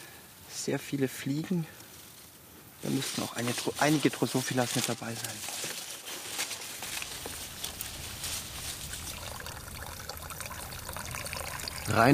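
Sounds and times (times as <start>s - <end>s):
speech: 0.7s - 1.8s, 2.8s - 5.7s, 11.9s - 12.1s
juice pouring through a coffee filter: 7.0s - 12.1s.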